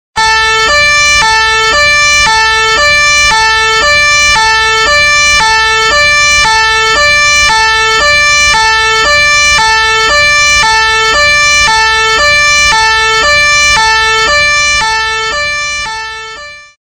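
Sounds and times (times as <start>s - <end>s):
ambulance siren: 0.1s - 16.8s.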